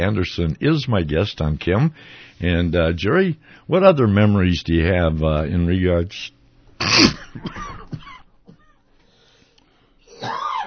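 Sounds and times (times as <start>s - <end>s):
speech: 0.0s - 8.0s
man with a bad cough coughing: 6.8s - 8.8s, 10.1s - 10.6s.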